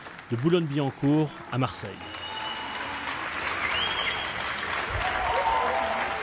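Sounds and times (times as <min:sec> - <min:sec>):
applause from balconies across France thanking health workers: 0:00.0 - 0:06.2
speech: 0:00.3 - 0:02.2
faint cheers: 0:01.3 - 0:06.2
faint whistles: 0:02.0 - 0:04.5.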